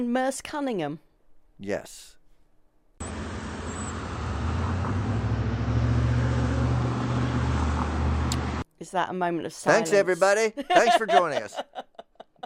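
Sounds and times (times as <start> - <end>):
speech: 0.0 - 2.2, 8.8 - 11.9
road traffic rumble of engines: 3.0 - 8.6
laughter: 9.8 - 12.4.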